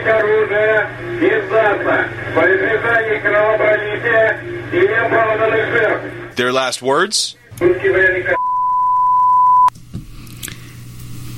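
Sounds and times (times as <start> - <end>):
speech: 0.0 - 8.4
low hum: 0.0 - 11.3
loud steady high-pitched beep like a flatline: 8.4 - 9.7.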